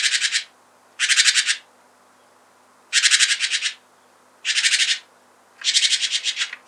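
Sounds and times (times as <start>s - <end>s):
great tit Parus major churring calls: 0.0s - 1.6s, 3.0s - 3.8s, 4.5s - 6.6s.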